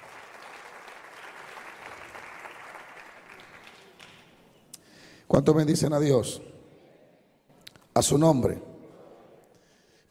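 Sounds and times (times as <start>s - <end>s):
audience applauding: 0.0s - 4.6s
speech: 5.3s - 6.5s, 8.0s - 8.7s.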